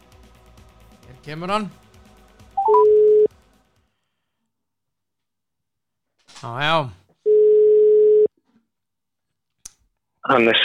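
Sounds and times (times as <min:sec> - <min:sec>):
speech: 0:01.2 - 0:01.8, 0:06.4 - 0:07.0, 0:10.3 - 0:10.6
telephone dialling beeps: 0:02.6 - 0:03.3, 0:07.3 - 0:08.3.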